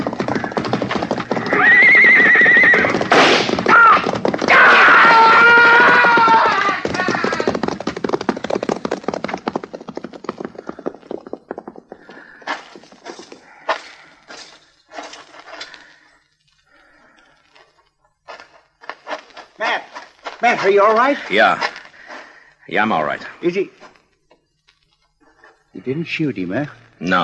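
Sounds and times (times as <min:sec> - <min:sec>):
rhythmic hoofbeats: 0:00.0 - 0:16.2, 0:16.8 - 0:22.9
horse whinnying: 0:00.1 - 0:07.9
speech: 0:20.7 - 0:21.7, 0:22.7 - 0:23.8, 0:25.8 - 0:27.2.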